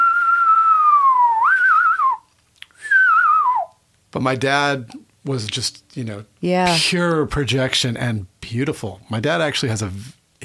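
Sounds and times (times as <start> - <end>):
reverse whistling by sucking air inward: 0.0 - 3.8
speech: 4.1 - 10.4.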